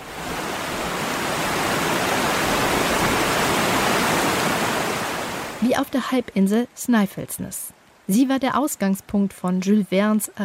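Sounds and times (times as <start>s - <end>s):
waterfall roaring: 0.0s - 10.4s
speech: 5.7s - 10.4s.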